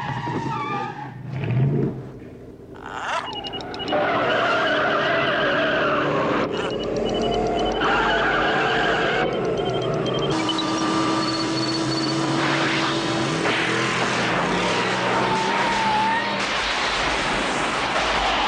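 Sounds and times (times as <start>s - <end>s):
race car tires skidding and squealing: 0.0s - 1.6s, 3.9s - 6.5s, 12.2s - 18.4s
race car engines roaring in motor racing: 3.2s - 18.4s.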